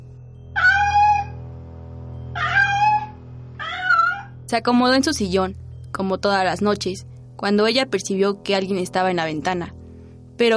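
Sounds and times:
stray cat meowing: 0:02.4 - 0:04.3
speech: 0:04.5 - 0:09.8, 0:10.4 - 0:10.5.

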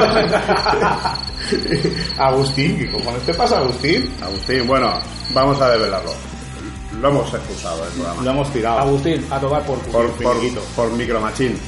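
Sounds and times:
laughter: 0:00.0 - 0:02.2
crickets chirping: 0:00.0 - 0:08.2
speech: 0:00.2 - 0:11.6.

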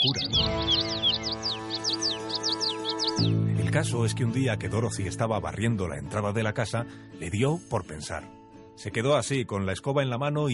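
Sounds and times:
speech: 0:00.0 - 0:00.6, 0:03.2 - 0:10.5
flock of small birds chirping and tweeting: 0:00.0 - 0:05.2.

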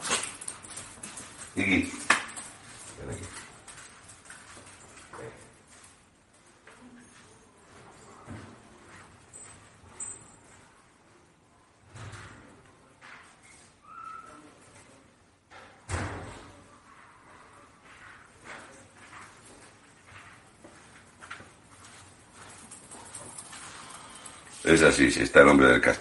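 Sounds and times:
restless dogs' claws clicking on a kitchen floor: 0:00.0 - 0:06.0, 0:18.0 - 0:24.7
speech: 0:01.6 - 0:02.0, 0:24.7 - 0:25.9.

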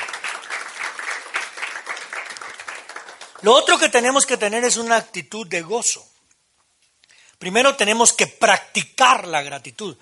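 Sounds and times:
large crowd applauding loudly: 0:00.0 - 0:04.0
speech: 0:03.4 - 0:06.1, 0:07.4 - 0:10.0.

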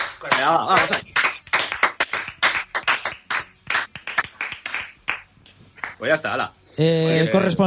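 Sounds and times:
small group applauding: 0:00.0 - 0:06.1
speech: 0:00.4 - 0:01.1, 0:06.0 - 0:07.6.

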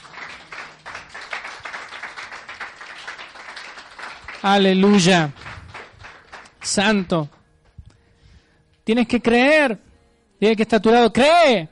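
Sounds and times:
crowd clapping: 0:00.0 - 0:07.4
speech: 0:04.4 - 0:05.4, 0:06.7 - 0:07.4, 0:08.9 - 0:11.6.

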